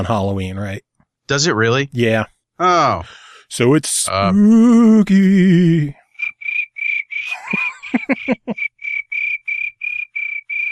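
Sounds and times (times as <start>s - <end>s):
speech: 0.0s - 6.0s, 7.5s - 8.7s
laughter: 1.9s - 4.3s, 7.3s - 8.6s
crickets chirping: 6.1s - 10.7s.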